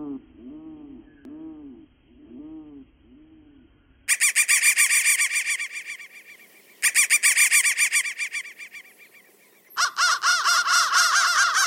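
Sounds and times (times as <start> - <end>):
crow giving hoarse arched caws: 4.1 - 11.6.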